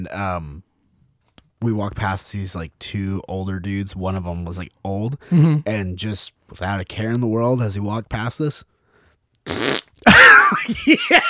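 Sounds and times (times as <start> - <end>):
speech: 0.0 - 0.7, 1.6 - 8.7, 9.4 - 11.2
loud drawn-out rasping fart sound blown with the mouth: 9.4 - 10.0.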